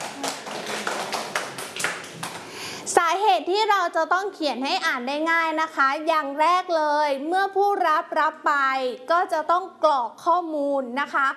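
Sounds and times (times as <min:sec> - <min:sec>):
children clapping for a classmate: 0:00.0 - 0:02.6
speech: 0:03.2 - 0:11.3.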